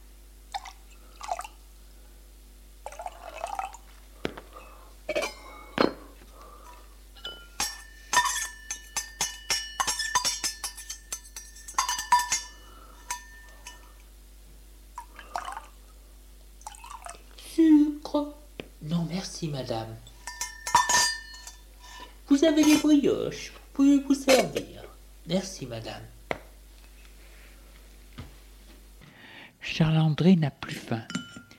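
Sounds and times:
cups clinking as hot chocolate is served: 0.5 - 1.6, 2.8 - 14.1, 15.0 - 15.8, 16.6 - 17.2, 20.0 - 22.9, 31.0 - 31.5
hot chocolate dripping as it is poured: 2.8 - 4.0, 16.6 - 17.4
speech: 18.2 - 18.4, 19.1 - 20.1, 22.3 - 24.7, 25.3 - 26.2, 29.8 - 31.1.

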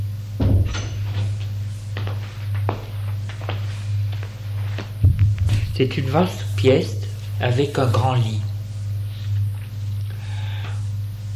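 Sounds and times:
steady low hum: 0.0 - 11.3
bedroom door opening with a short clunk: 0.4 - 1.3
soft footsteps: 1.0 - 6.5
speech: 5.8 - 8.5.

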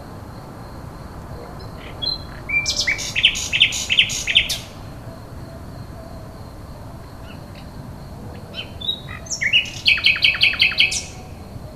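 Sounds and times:
common nightingale song phrase: 0.0 - 11.7.

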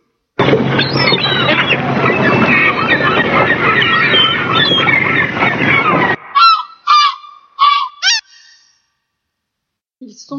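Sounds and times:
seagulls and large gulls crying: 0.4 - 8.2.

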